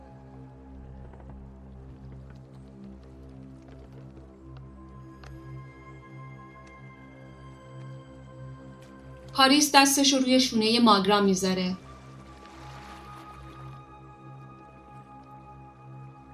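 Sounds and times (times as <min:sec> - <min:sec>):
speech: 0:09.4 - 0:11.8
oars paddling a boat through river water: 0:11.8 - 0:14.0.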